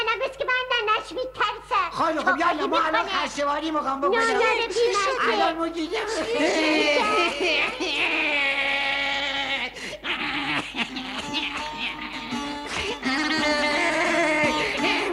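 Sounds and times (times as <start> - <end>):
speech: 1.1 - 1.4, 2.0 - 8.5
laughter: 2.0 - 3.2, 4.7 - 15.1
child crying with a wavering wail: 6.2 - 15.1.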